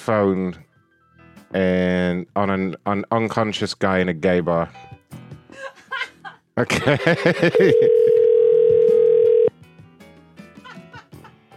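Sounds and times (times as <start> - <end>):
speech: 0.0 - 0.7, 1.5 - 5.7, 6.6 - 8.1
people laughing: 5.6 - 8.3, 10.6 - 11.4
telephone dial tone as a call is placed back: 7.6 - 9.5.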